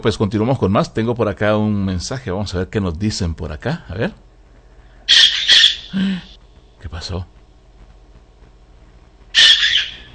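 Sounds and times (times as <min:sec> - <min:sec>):
speech: 0:00.0 - 0:04.3, 0:05.9 - 0:07.4
parakeet giving a harsh high-pitched screech: 0:05.1 - 0:06.0, 0:09.3 - 0:10.1.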